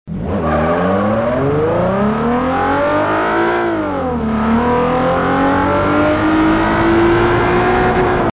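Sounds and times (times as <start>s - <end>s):
Nissan 350Z car engine: 0.1s - 8.3s.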